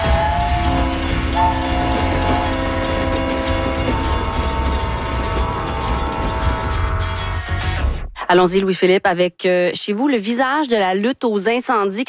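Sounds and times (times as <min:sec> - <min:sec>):
train horn blaring: 0:00.0 - 0:07.8
speech: 0:08.3 - 0:12.0.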